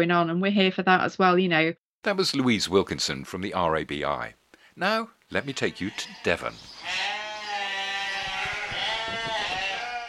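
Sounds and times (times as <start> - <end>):
speech: 0.0 - 7.3
sheep bleating at a livestock market: 5.3 - 10.0
knocks and shuffling of a busy pen: 6.0 - 10.0.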